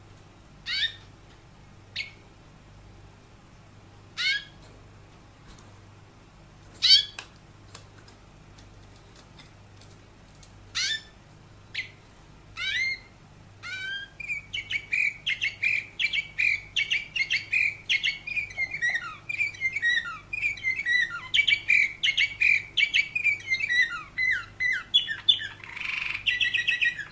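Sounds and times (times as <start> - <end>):
canary giving sharp chirps: 0.6 - 1.1, 1.9 - 2.3, 4.1 - 4.6, 6.8 - 7.2, 10.7 - 27.0.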